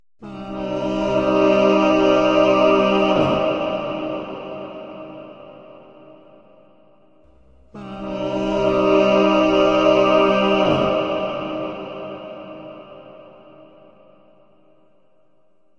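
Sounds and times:
reverberant harmonized robot singing: 0:00.2 - 0:04.7, 0:07.6 - 0:12.7.

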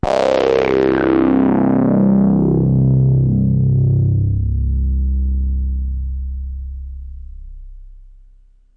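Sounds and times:
nasal hard synth at C1: 0:00.0 - 0:05.8.

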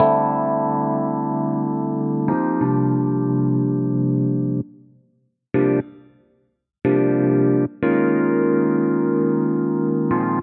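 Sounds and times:
Rhodes electric piano playing jazzy chords: 0:00.0 - 0:04.7, 0:06.9 - 0:10.4.

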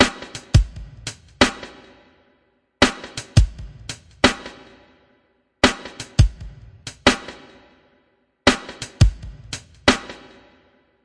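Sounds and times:
85 bpm breakbeat drums with subtle snare and kick: 0:00.0 - 0:01.9, 0:02.8 - 0:04.8, 0:05.6 - 0:07.6, 0:08.5 - 0:10.4.

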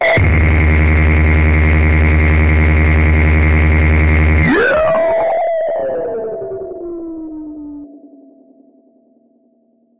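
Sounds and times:
insane megabass: 0:00.0 - 0:07.9.

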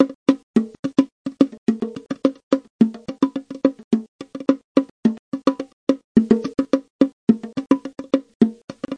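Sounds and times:
bongo drum loop: 0:00.0 - 0:08.9.

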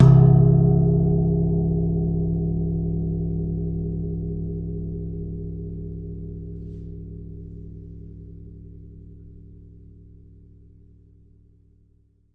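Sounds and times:
long single hit on a longevity gong: 0:00.0 - 0:06.5.

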